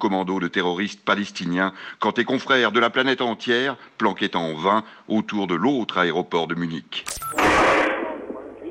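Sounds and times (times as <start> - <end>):
speech: 0.0 - 7.8
sniper gunshots at an airfield in Munich: 7.1 - 8.2.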